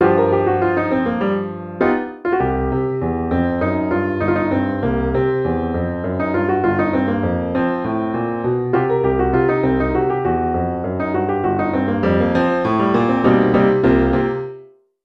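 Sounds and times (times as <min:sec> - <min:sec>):
intermediate boogie piano solo: 0:00.0 - 0:14.6.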